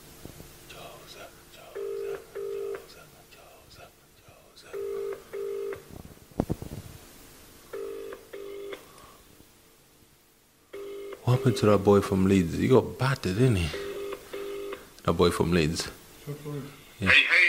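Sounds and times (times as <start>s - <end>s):
telephone ringback tone: 1.8s - 2.9s, 4.8s - 5.9s, 7.7s - 8.8s, 10.7s - 11.8s, 13.8s - 14.7s
speech: 11.3s - 13.8s, 15.1s - 17.4s.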